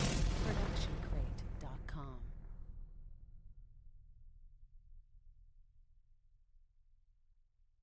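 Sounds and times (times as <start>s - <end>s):
sci-fi electronic explosion wave: 0.0s - 1.6s.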